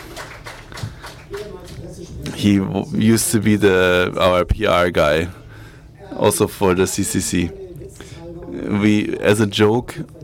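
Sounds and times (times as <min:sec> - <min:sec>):
audience applause: 0:00.0 - 0:01.7
speech: 0:02.4 - 0:05.4, 0:06.2 - 0:07.6, 0:08.6 - 0:10.2.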